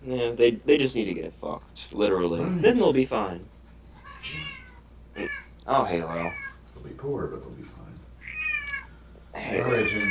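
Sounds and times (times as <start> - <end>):
speech: 0.0 - 3.6, 5.2 - 7.9, 9.4 - 10.0
cat meowing: 4.0 - 5.5, 6.1 - 6.6, 8.2 - 8.9, 9.5 - 10.0.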